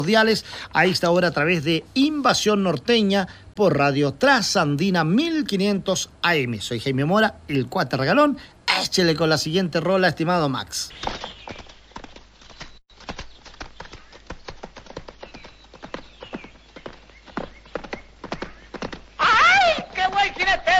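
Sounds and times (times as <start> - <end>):
speech: 0.0 - 11.3
horse hooves clip-clopping: 10.9 - 20.7.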